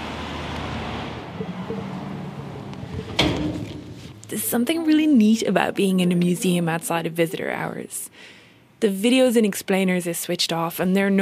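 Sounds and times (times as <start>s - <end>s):
busy traffic roar on State Highway 1 through Dunedin: 0.0s - 7.3s
museum staff side door shutting with a clunk: 2.8s - 4.1s
speech: 4.3s - 11.2s.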